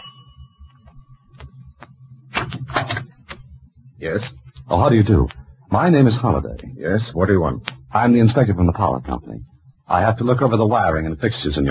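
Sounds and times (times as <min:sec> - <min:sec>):
house front doorbell ringing: 0:00.0 - 0:01.0
speech: 0:04.0 - 0:11.6.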